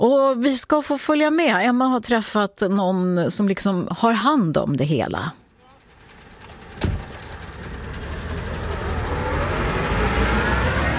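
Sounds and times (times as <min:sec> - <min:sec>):
speech: 0:00.0 - 0:05.4
heavy trucks rumbling past on a skid training track: 0:05.5 - 0:10.9.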